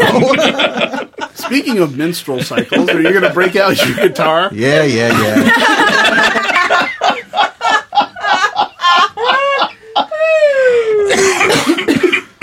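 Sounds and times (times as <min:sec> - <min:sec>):
laughter: 0:00.0 - 0:12.0
speech: 0:01.5 - 0:06.0
person coughing in rapid bursts: 0:11.1 - 0:12.4.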